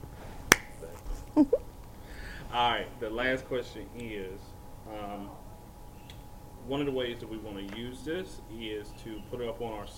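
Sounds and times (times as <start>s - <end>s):
hand clap: 0.5s - 0.7s
speech: 1.4s - 1.6s, 2.5s - 5.4s, 6.6s - 9.9s.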